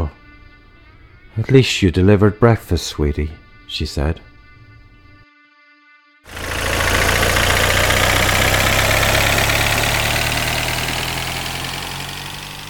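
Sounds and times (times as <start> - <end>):
speech: 1.4 - 4.3
black Porsche sports car engine roar speeding along winding roads in Connemara: 6.3 - 12.6.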